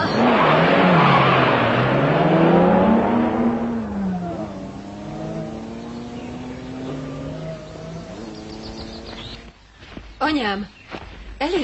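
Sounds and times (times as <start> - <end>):
car engine revving as the vehicle pulls away: 0.0 - 9.5
tires squealing: 0.0 - 9.5
speech: 10.3 - 10.8, 11.4 - 11.6.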